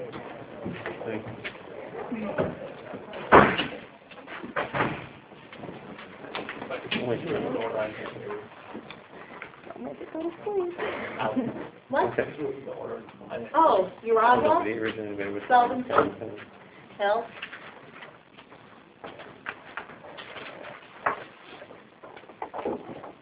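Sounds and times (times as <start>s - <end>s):
speech: 1.1s - 1.5s, 2.1s - 2.5s, 7.1s - 8.6s, 10.2s - 17.5s
doors slamming shut: 3.2s - 3.9s, 4.5s - 5.2s.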